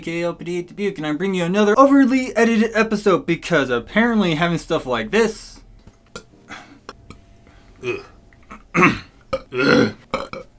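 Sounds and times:
speech: 0:00.0 - 0:05.6, 0:07.8 - 0:08.1, 0:08.8 - 0:10.0
burps from drinking coffee: 0:07.8 - 0:10.5.

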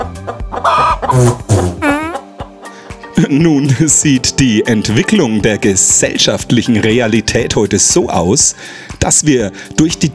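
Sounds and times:
chicken clucking and squawking: 0:00.0 - 0:03.0
speech: 0:00.7 - 0:01.4, 0:03.2 - 0:10.1.

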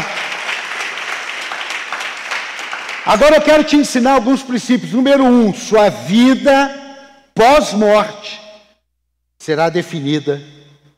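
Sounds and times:
crowd applauding: 0:00.0 - 0:03.7
speech: 0:03.1 - 0:06.8, 0:07.4 - 0:08.4, 0:09.4 - 0:10.6.

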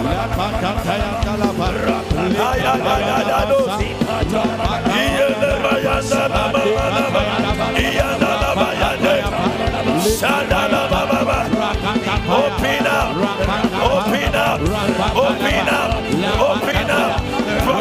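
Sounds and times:
laughter: 0:00.0 - 0:17.7
many voices praying aloud: 0:00.0 - 0:17.7
speech: 0:00.2 - 0:05.2.

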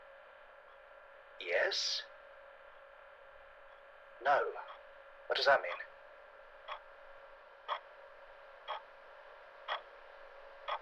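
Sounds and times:
constant low electrical hum: 0:00.0 - 0:10.8
speech: 0:01.4 - 0:02.1, 0:04.2 - 0:04.7, 0:05.3 - 0:05.9
wall clock ticking: 0:09.7 - 0:09.9.

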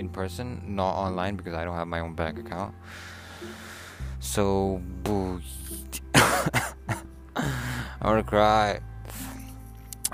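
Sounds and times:
speech: 0:00.0 - 0:06.5, 0:07.4 - 0:08.9
person with a dry throat coughing outdoors in the cold: 0:06.1 - 0:07.0.

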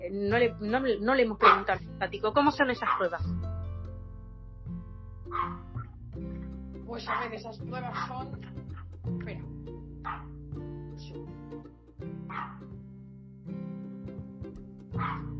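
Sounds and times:
speech: 0:00.1 - 0:03.5, 0:06.9 - 0:10.2
small dog barking: 0:01.4 - 0:01.7, 0:02.8 - 0:03.3, 0:05.3 - 0:05.6, 0:07.0 - 0:08.2, 0:10.0 - 0:10.3, 0:12.3 - 0:12.6, 0:15.0 - 0:15.3.

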